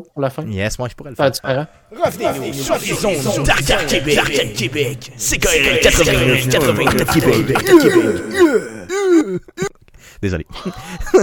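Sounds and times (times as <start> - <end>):
speech: 0.0 - 9.6, 10.2 - 11.2
laughter: 1.9 - 9.7, 10.6 - 11.2
voice imitating an engine with gliding vocal revs: 2.0 - 9.2.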